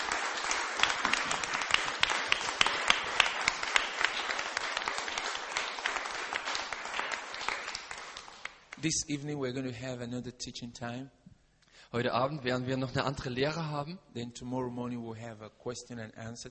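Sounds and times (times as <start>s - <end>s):
congregation clapping in praise at a church service: 0.0s - 8.9s
speech: 8.8s - 11.2s, 11.9s - 16.4s.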